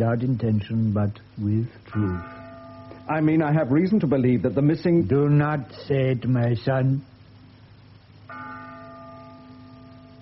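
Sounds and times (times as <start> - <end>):
speech: 0.0 - 2.4, 3.1 - 7.1
low steady hum: 0.0 - 10.2
large church bell ringing with deep shimmering tone: 1.9 - 3.9, 8.3 - 10.2.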